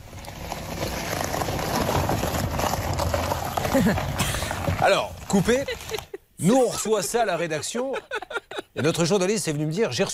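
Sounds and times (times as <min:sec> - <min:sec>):
car rolling over a rough, broken driveway: 0:00.0 - 0:06.1
speech: 0:03.8 - 0:04.1, 0:04.8 - 0:08.2, 0:08.8 - 0:10.1
laughter: 0:05.3 - 0:09.0.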